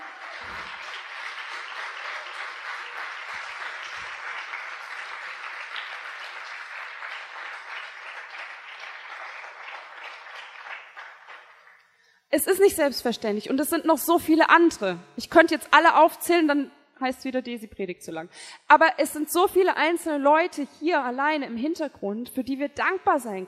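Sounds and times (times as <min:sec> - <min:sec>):
audience applause: 0:00.0 - 0:11.9
speech: 0:12.4 - 0:23.4.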